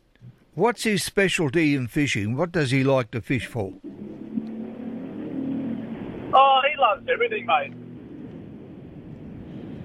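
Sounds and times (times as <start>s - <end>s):
speech: 0.6s - 3.9s, 6.9s - 7.8s
boat motor humming and revving: 3.7s - 9.0s.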